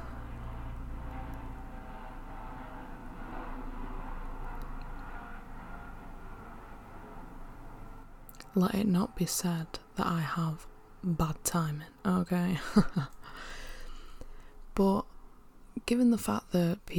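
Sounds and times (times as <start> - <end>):
aeroplane engine roar overhead: 0.0 - 12.4
speech: 8.6 - 13.5, 14.8 - 15.0, 15.9 - 16.9.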